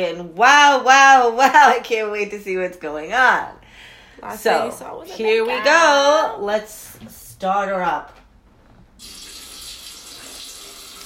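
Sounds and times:
speech: 0.0 - 8.2
shower water running: 9.0 - 11.0.

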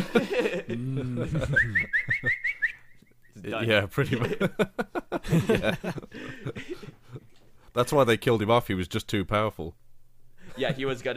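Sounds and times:
laughter: 0.0 - 2.6, 4.0 - 7.4
speech: 0.1 - 2.4, 3.4 - 6.7, 7.8 - 9.8, 10.6 - 11.1
person whistling rising chirps imitating a darting arrow whistle: 1.6 - 3.1.

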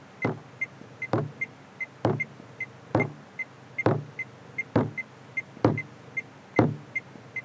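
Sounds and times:
fist banging on a car body: 0.2 - 0.5, 1.2 - 1.4, 2.1 - 2.3, 3.0 - 3.2, 3.9 - 4.2, 4.8 - 5.0, 5.6 - 5.9, 6.6 - 6.9.

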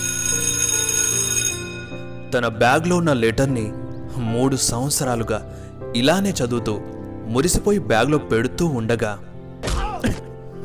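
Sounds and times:
school bell ringing: 0.0 - 2.1
speech: 2.3 - 9.3, 10.0 - 10.3.

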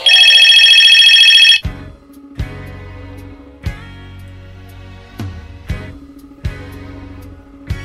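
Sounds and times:
loud buzzy telephone ring: 0.0 - 1.6.

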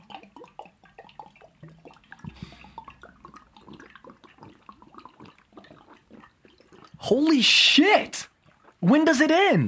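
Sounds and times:
person chugging water from a bottle: 0.0 - 9.6
speech: 7.0 - 9.6.

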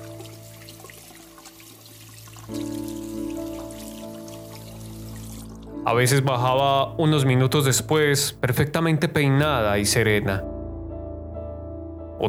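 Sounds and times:
bathroom taps running water: 0.0 - 5.8
speech: 5.9 - 10.5.

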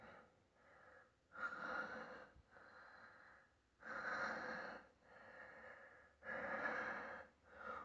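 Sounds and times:
heavy rhythmic panting breaths with raspy inhales: 0.0 - 7.8.

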